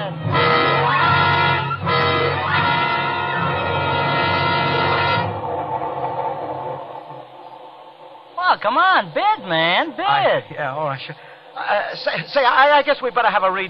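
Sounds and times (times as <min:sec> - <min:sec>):
droning horn-like tone: 0:00.0 - 0:07.3
passenger train running on rails: 0:00.0 - 0:11.6
speech: 0:08.6 - 0:13.6.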